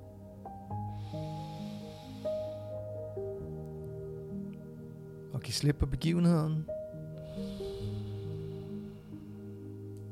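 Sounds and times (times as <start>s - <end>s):
calm sustained musical tones: 0.0s - 10.1s
slow deep breath drawn in and let out: 0.7s - 3.4s, 7.2s - 10.0s
speech: 5.4s - 6.8s.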